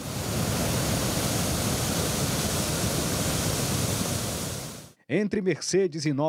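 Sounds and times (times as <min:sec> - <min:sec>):
rushing floodwater current near waterfalls: 0:00.0 - 0:04.9
speech: 0:05.1 - 0:06.2.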